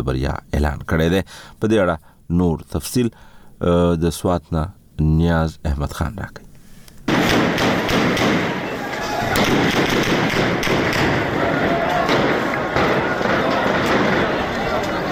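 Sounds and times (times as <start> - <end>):
speech: 0.0 - 6.5
dense constant din of a clash between protesters and police: 7.1 - 15.1
gunshots during a clash between protesters and police in a bazaar: 7.1 - 15.1.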